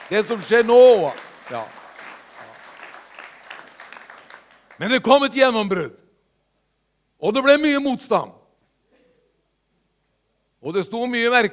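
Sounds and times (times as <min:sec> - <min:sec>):
audience clapping at a church service: 0:00.0 - 0:05.3
speech: 0:00.1 - 0:01.8, 0:04.8 - 0:06.0, 0:07.2 - 0:08.4, 0:10.6 - 0:11.5.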